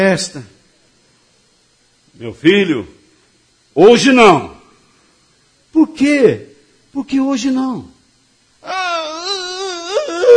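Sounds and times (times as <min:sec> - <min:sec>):
speech: 0:00.0 - 0:00.6, 0:02.2 - 0:03.0, 0:03.8 - 0:04.6, 0:05.8 - 0:07.9
voice imitating a child's whiny fake crying wail: 0:08.6 - 0:10.3.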